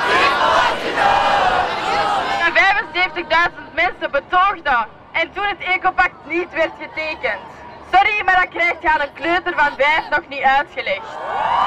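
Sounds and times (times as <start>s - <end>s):
large crowd of young climate protesters chanting and shouting: 0.0s - 10.4s
speech: 3.0s - 11.6s.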